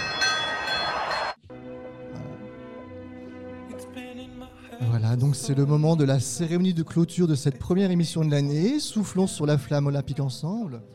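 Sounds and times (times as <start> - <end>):
loud bright bell rung by broadcast control room: 0.0 - 1.4
speech: 4.9 - 10.9.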